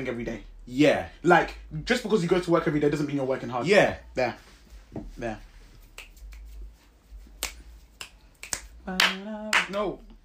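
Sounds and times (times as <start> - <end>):
speech: 0.0 - 5.5, 8.8 - 10.2
sharp loud hand claps: 7.4 - 9.9.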